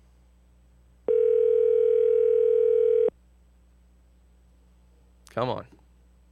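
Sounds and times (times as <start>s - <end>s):
ringing tone on an outgoing telephone call: 1.1s - 3.1s
speech: 5.4s - 5.8s.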